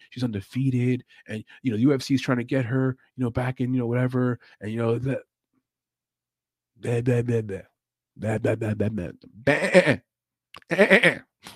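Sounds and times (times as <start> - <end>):
speech: 0.2 - 5.3, 6.8 - 11.5
person imitating a sheep bleating: 9.4 - 10.0, 10.6 - 11.2.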